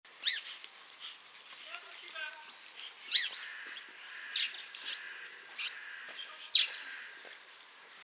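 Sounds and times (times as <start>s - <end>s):
house sparrow Passer domesticus chirps: 0.2s - 0.6s, 3.1s - 7.1s.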